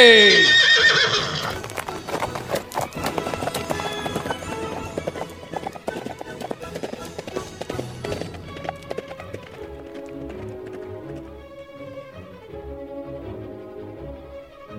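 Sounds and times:
horse whinnying: 0:00.0 - 0:07.5
galloping horse hoofbeats: 0:00.4 - 0:12.1.

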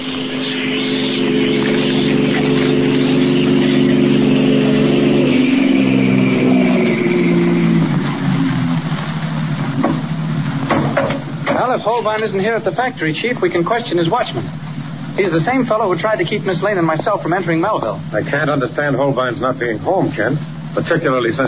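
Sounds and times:
car driving up the street: 0:00.0 - 0:10.7
speech: 0:12.0 - 0:14.6, 0:15.2 - 0:21.4.

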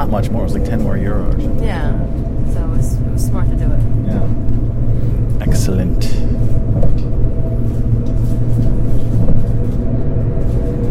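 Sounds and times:
constant droning hum: 0:00.0 - 0:10.9
low-frequency rumble inside a moving Trenitalia passenger train in business class: 0:00.0 - 0:10.9
speech: 0:00.2 - 0:04.4, 0:05.4 - 0:06.5.

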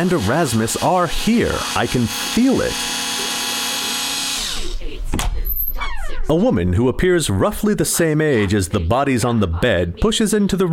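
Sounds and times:
speech: 0:00.0 - 0:03.0, 0:06.3 - 0:10.7
robot drill boring through a door lock: 0:00.0 - 0:04.8.

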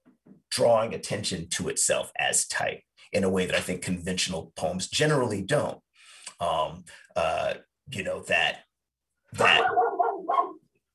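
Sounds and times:
speech: 0:00.6 - 0:05.8, 0:06.4 - 0:08.7, 0:09.3 - 0:09.8
pet dog giving a rough drawn-out bark: 0:09.4 - 0:10.6.

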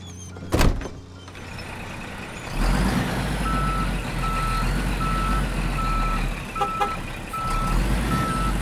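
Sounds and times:
heavy truck rumbling: 0:00.0 - 0:08.5
truck reverse warning beeper: 0:03.4 - 0:08.5.

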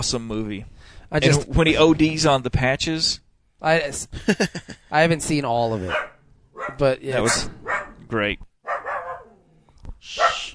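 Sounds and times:
speech: 0:00.0 - 0:08.8, 0:10.0 - 0:10.3
dogs barking: 0:05.8 - 0:08.0, 0:08.6 - 0:09.4, 0:10.2 - 0:10.5.

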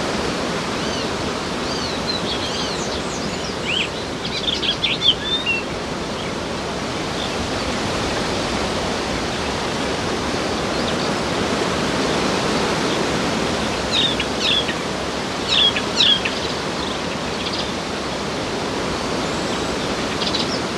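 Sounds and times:
ocean wind blowing through leaves: 0:00.0 - 0:20.7
birds singing from treetops on a Danish island: 0:00.7 - 0:08.5, 0:12.0 - 0:18.4, 0:19.0 - 0:20.7.

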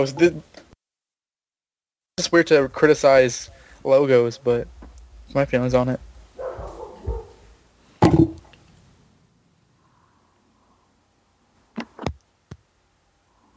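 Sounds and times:
speech: 0:00.0 - 0:00.6, 0:02.2 - 0:06.1
dog barking: 0:06.4 - 0:07.5.

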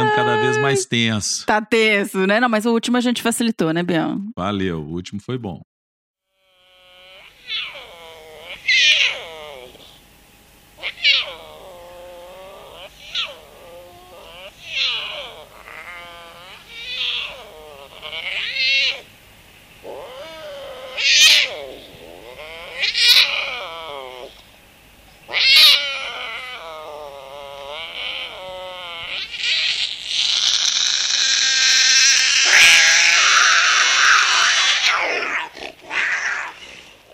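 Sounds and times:
speech: 0:00.7 - 0:05.7
puma chirping and squealing with high whistling calls: 0:06.7 - 0:10.0, 0:10.8 - 0:19.1, 0:19.8 - 0:24.5, 0:25.2 - 0:37.0.

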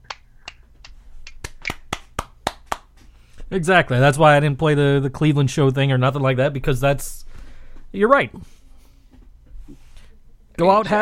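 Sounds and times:
sharp hand claps: 0:00.0 - 0:03.1
speech: 0:03.5 - 0:07.3, 0:07.9 - 0:08.6, 0:10.6 - 0:10.9.

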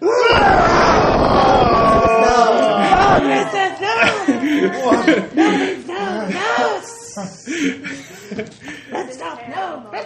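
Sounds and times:
people screaming and wailing in agony: 0:00.0 - 0:03.4
laughter: 0:02.2 - 0:09.3.

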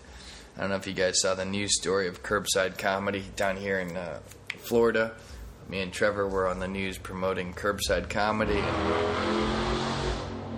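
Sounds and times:
speech: 0:00.6 - 0:09.7
car engine revving and peeling out: 0:08.4 - 0:10.5.

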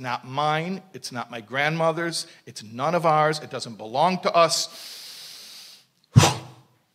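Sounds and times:
speech: 0:00.0 - 0:05.0
soft steady hiss of breath: 0:04.7 - 0:06.0
forceful exhale through the mouth to expel breath: 0:04.7 - 0:06.6.

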